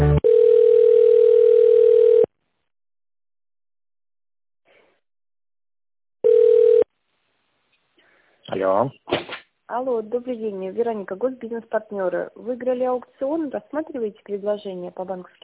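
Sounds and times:
telephone line tones while a call is being connected: 0:00.2 - 0:02.3, 0:06.2 - 0:06.9
speech: 0:10.0 - 0:15.4.

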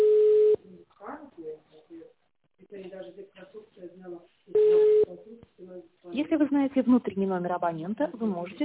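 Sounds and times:
telephone ringback tone: 0:00.0 - 0:00.6, 0:04.6 - 0:05.1
recorded voice speaking: 0:00.6 - 0:08.6
speech: 0:06.7 - 0:08.6.

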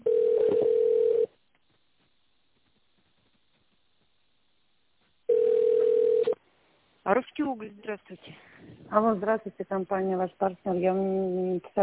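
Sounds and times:
telephone line tone during a call transfer: 0:00.0 - 0:01.3, 0:05.3 - 0:06.4
speech: 0:07.4 - 0:11.8.

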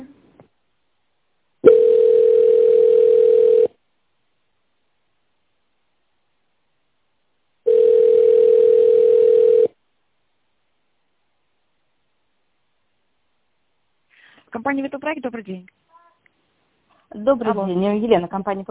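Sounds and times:
telephone ringback tones on a company's phone line: 0:01.6 - 0:03.7, 0:07.7 - 0:09.8
speech: 0:14.7 - 0:15.8, 0:17.1 - 0:18.7.

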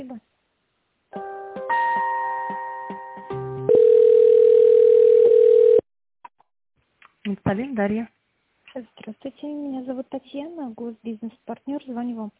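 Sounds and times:
telephone line tones during office call transfer: 0:03.7 - 0:05.8
speech: 0:07.5 - 0:08.2, 0:08.8 - 0:12.3.

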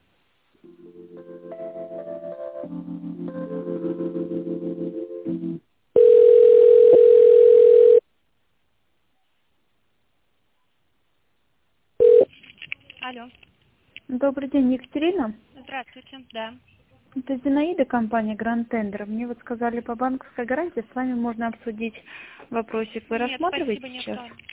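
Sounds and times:
short melodic telephone hold tune during call transfer: 0:00.6 - 0:06.8
loud steady telephone line tone during call transfer: 0:06.0 - 0:08.0, 0:12.0 - 0:12.3
speech: 0:13.2 - 0:13.5, 0:14.2 - 0:24.5.

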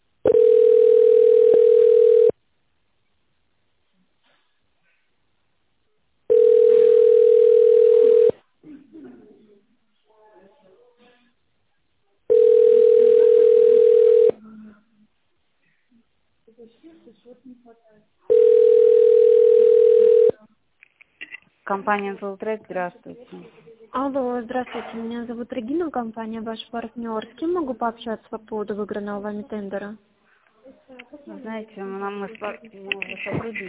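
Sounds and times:
telephone ringback tone while a call connects to an operator: 0:00.3 - 0:02.3, 0:06.3 - 0:08.3, 0:12.3 - 0:14.3, 0:18.3 - 0:20.3
speech: 0:21.8 - 0:30.1, 0:31.2 - 0:33.6.

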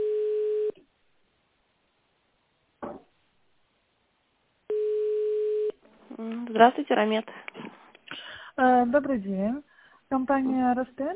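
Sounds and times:
telephone ringback tone while a call is transferred to an operator: 0:00.0 - 0:00.8, 0:04.7 - 0:05.8
speech: 0:06.5 - 0:07.8, 0:08.6 - 0:11.1.

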